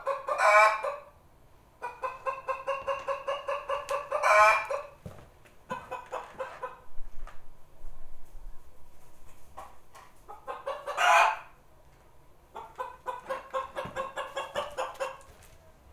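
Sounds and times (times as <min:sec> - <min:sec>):
chicken clucking: 0:00.0 - 0:01.1, 0:01.8 - 0:05.0, 0:05.7 - 0:06.9, 0:09.6 - 0:11.6, 0:12.5 - 0:15.7
chicken squawk: 0:00.0 - 0:01.1, 0:01.8 - 0:05.0, 0:10.3 - 0:11.6, 0:12.5 - 0:15.3.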